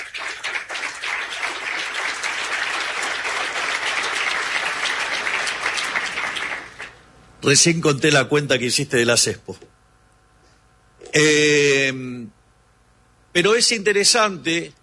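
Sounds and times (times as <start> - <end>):
audience applause: 0.0 - 7.0
speech: 7.4 - 9.7, 11.1 - 12.4, 13.3 - 14.8.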